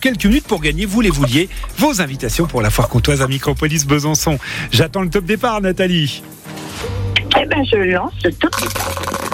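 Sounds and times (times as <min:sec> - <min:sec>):
speech: 0:00.0 - 0:09.1
dice clattering across a hard surface: 0:08.5 - 0:09.3.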